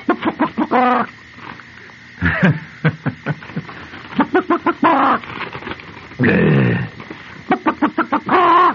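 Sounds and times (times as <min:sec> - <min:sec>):
voice imitating a chicken clucking and squawking: 0:00.0 - 0:01.1, 0:04.2 - 0:05.2, 0:06.2 - 0:08.7.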